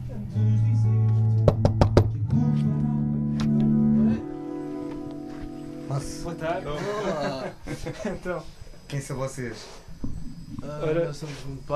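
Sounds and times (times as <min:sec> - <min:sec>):
music with a steady low tone: 0:00.0 - 0:07.6
knocking on a door: 0:01.4 - 0:02.2
speech: 0:06.3 - 0:11.7
laughter: 0:06.6 - 0:08.4.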